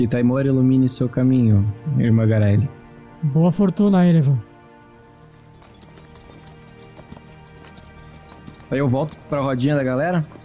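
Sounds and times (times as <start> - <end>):
speech: 0.0 - 4.5, 8.7 - 10.4
horse hooves clip-clopping at a trot along a trail: 5.0 - 10.4.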